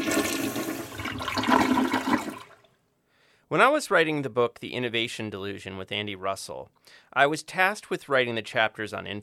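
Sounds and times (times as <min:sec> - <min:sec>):
toilet flushing: 0:00.0 - 0:02.7
speech: 0:03.5 - 0:09.2.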